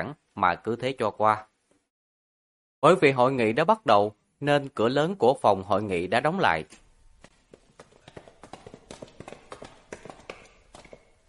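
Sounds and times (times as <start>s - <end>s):
speech: 0.0s - 1.5s, 2.8s - 6.8s
footsteps with hard heel taps in a quiet corridor: 6.7s - 11.2s.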